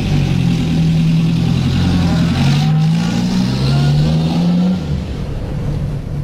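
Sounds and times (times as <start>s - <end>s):
car engine revving: 0.0s - 6.2s.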